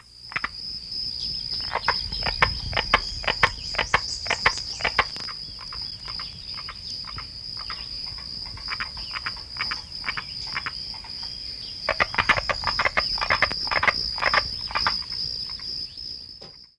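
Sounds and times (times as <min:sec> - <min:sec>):
carpenter frog: 0:00.0 - 0:16.7.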